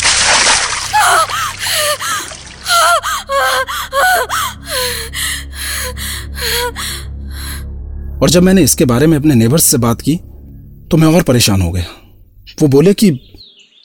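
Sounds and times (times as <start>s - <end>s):
bucket of water splashed on someone: 0.0s - 3.7s
person gasping and sputtering: 0.9s - 7.6s
speech: 8.2s - 10.3s, 10.9s - 12.0s, 12.6s - 13.3s.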